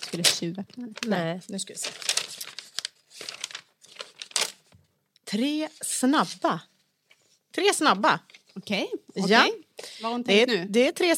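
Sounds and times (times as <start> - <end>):
tape and packaging tearing and crinkling as a taped package is opened: 0.0 - 4.7
speech: 0.1 - 2.1, 5.3 - 6.7, 7.6 - 11.1.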